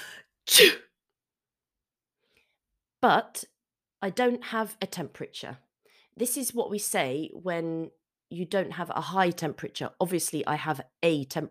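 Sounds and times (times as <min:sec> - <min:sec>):
person sneezing: 0:00.0 - 0:00.9
speech: 0:00.6 - 0:00.8, 0:03.0 - 0:05.6, 0:06.2 - 0:11.4.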